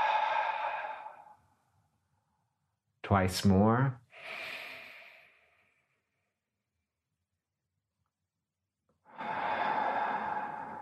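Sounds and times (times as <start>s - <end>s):
deep breath exhaled through the mouth: 0.0s - 1.4s, 4.1s - 5.9s, 9.1s - 10.8s
speech: 3.1s - 4.4s.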